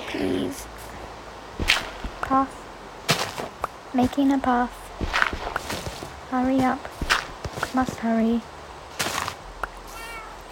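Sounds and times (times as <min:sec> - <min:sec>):
faint steady hiss: 0:00.0 - 0:10.5
speech: 0:00.1 - 0:00.8, 0:02.3 - 0:02.6, 0:03.9 - 0:04.8, 0:06.3 - 0:06.9, 0:07.6 - 0:08.5
cat meowing: 0:09.9 - 0:10.5.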